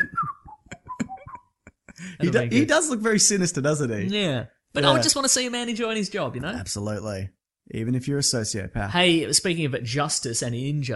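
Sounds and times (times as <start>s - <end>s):
person whistling a quick bouncy melody: 0.0s - 1.4s
speech: 2.0s - 10.9s.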